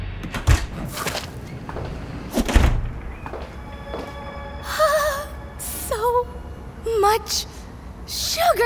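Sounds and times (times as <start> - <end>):
soda shop back door thumping shut and latching: 0.2 - 0.9, 1.7 - 3.1
soda shop back door creaking open: 0.2 - 4.2
faint tonal whine: 3.0 - 8.6
speech: 7.2 - 7.5.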